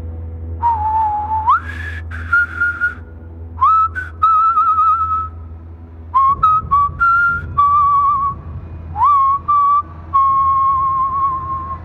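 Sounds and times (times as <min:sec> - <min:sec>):
low constant hum: 0:00.0 - 0:11.8
person whistling a slow wavering tune: 0:00.6 - 0:03.0, 0:03.6 - 0:05.4, 0:06.2 - 0:08.4, 0:09.0 - 0:11.8.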